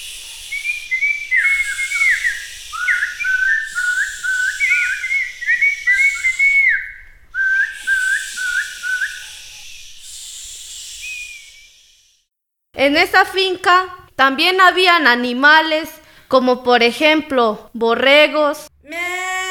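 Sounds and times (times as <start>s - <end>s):
birds singing in warbling trills: 0.0s - 12.0s
speech: 12.8s - 18.7s.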